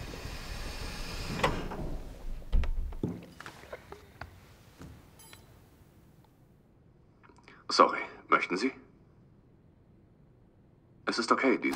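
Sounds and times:
doors opening with a sliding whoosh: 0.0s - 3.0s
speech: 7.8s - 8.8s, 11.2s - 11.7s.

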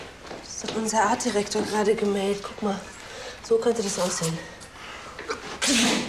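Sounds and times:
speech: 0.8s - 4.5s, 5.7s - 6.0s
loud sneeze after an inhaled build-up: 5.3s - 6.0s.

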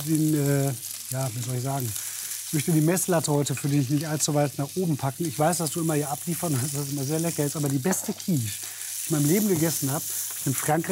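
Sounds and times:
chopped shallots frying in a pan: 0.0s - 10.9s
speech: 0.0s - 10.9s.

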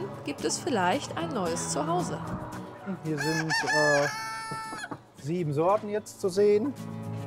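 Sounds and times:
speech: 0.2s - 4.6s, 5.2s - 7.0s
agitated chickens clucking and squawking at a poultry breeder's: 2.5s - 5.1s.

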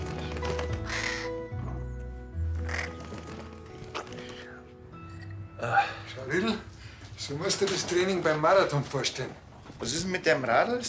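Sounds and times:
crow cawing: 0.2s - 1.6s, 2.6s - 3.3s
speech: 5.6s - 6.6s, 7.3s - 10.8s.

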